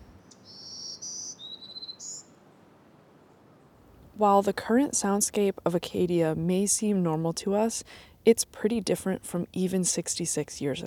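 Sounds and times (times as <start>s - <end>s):
black-throated green warbler singing thin buzzy high notes: 0.3s - 2.3s
speech: 4.2s - 10.8s.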